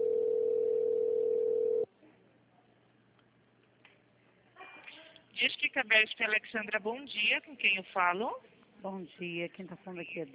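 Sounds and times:
telephone tone while a call is being transferred to an agent: 0.0 - 1.9
speech: 5.8 - 10.3.

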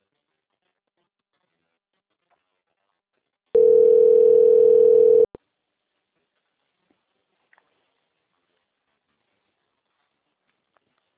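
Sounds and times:
telephone line tone during a call transfer: 3.6 - 5.3.

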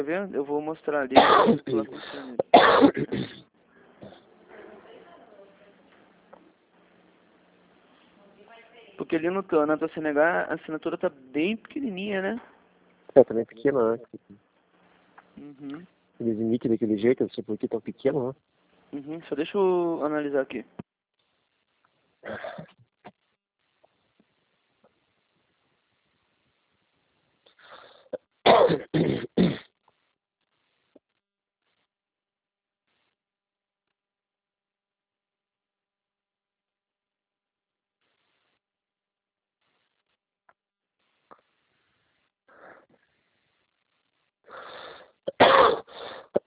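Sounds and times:
speech: 0.0 - 4.2, 9.0 - 12.5, 13.2 - 14.4, 15.4 - 20.8, 22.2 - 22.7
harsh wheezy coughing and throat clearing: 1.2 - 4.2, 22.2 - 23.2, 28.1 - 29.7, 45.3 - 46.4.

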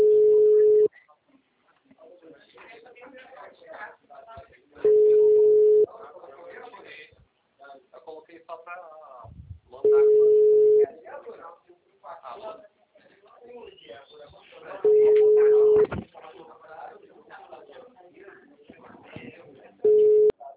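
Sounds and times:
telephone ringback tone beeps on an unanswered call: 0.0 - 0.9, 4.8 - 5.9, 9.9 - 10.8, 14.9 - 15.9, 19.9 - 20.3
people talking: 1.8 - 20.5.

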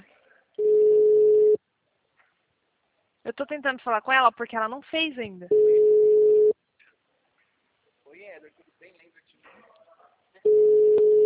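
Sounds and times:
telephone busy signal while someone is calling: 0.6 - 1.6, 5.5 - 6.5, 10.5 - 11.2
speech: 3.4 - 6.1, 8.2 - 9.8.

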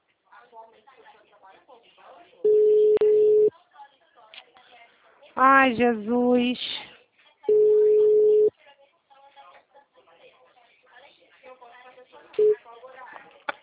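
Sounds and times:
telephone busy tone after a dropped call: 2.5 - 3.5, 7.5 - 8.5
speech: 5.4 - 6.8.

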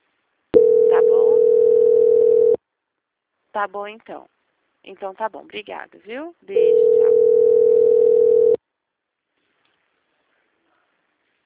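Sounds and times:
steady telephone tone while a call is being transferred: 0.6 - 2.6, 6.6 - 8.6
speech: 3.6 - 6.9.

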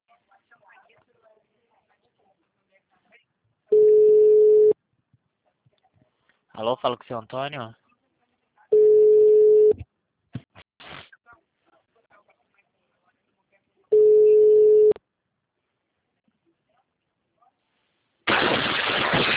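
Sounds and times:
telephone busy tone after a dropped call: 3.7 - 4.8, 8.7 - 9.8, 13.9 - 15.0
speech: 6.6 - 7.8
burst of harsh noise: 18.3 - 19.3.

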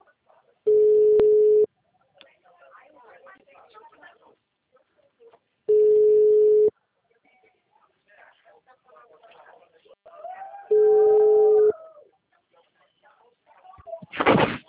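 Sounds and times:
telephone call ring tones on the line: 0.7 - 1.7, 5.7 - 6.7, 10.7 - 11.7.

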